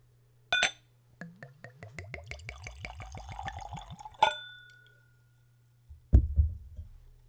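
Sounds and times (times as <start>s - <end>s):
light glass clinks: 0.6s - 0.8s, 4.1s - 5.0s
whiskey glugging from a bottle into a Glencairn nosing glass: 0.6s - 4.7s.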